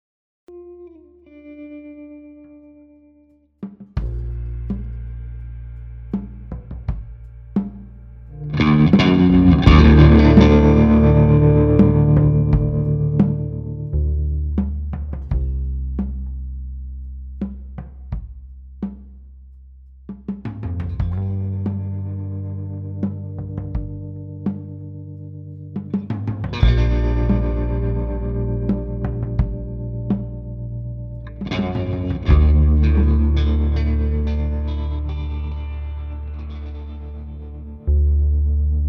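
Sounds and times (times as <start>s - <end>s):
bass guitar: 0.5s - 38.8s
atmospheric muffled drums: 3.6s - 16.8s, 17.4s - 19.2s, 20.1s - 35.6s.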